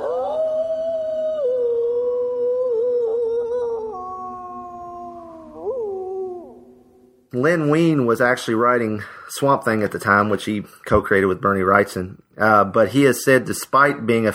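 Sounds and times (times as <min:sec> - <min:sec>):
wolf howling: 0:00.0 - 0:07.2
speech: 0:07.3 - 0:14.3.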